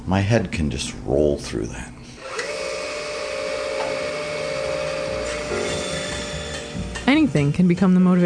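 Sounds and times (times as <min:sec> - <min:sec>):
speech: 0:00.1 - 0:02.0, 0:07.1 - 0:08.2
power sander whirring against wood in a workshop: 0:02.2 - 0:06.7.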